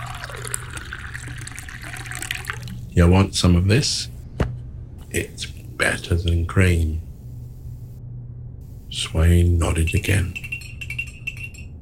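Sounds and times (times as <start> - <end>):
coffee pouring into a cup: 0.0 - 2.9
low hum: 0.0 - 11.8
speech: 3.0 - 4.1, 5.2 - 7.0, 9.0 - 10.5.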